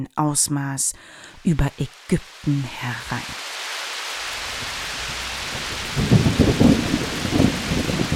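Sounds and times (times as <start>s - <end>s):
speech: 0.0s - 3.5s
heavy rain pouring: 1.0s - 8.1s
deep thunder rumbling and rolling: 1.4s - 8.1s.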